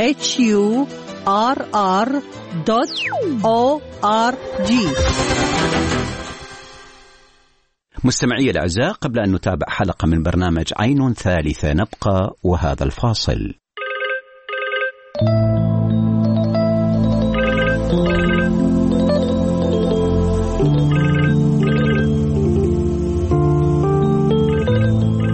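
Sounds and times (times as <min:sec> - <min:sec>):
speech: 0:00.0 - 0:06.2, 0:08.0 - 0:13.6, 0:15.2 - 0:15.7
music: 0:00.0 - 0:07.8, 0:15.1 - 0:25.3
telephone ringing with electronic chirping ringtone: 0:13.8 - 0:15.3, 0:17.2 - 0:18.7, 0:20.6 - 0:22.3, 0:24.3 - 0:25.3.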